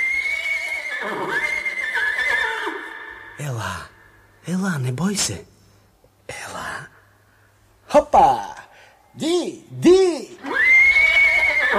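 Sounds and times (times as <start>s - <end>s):
horse neighing in a long high whinny: 0.0s - 3.4s, 10.4s - 11.7s
hiss: 0.0s - 11.7s
speech: 3.4s - 5.5s.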